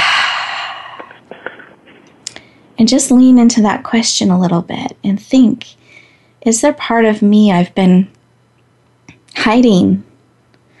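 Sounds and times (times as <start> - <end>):
deep breath during a guided mindfulness exercise: 0.0 - 1.8, 5.8 - 6.4
speech: 2.8 - 5.8, 6.4 - 8.2, 9.4 - 10.1.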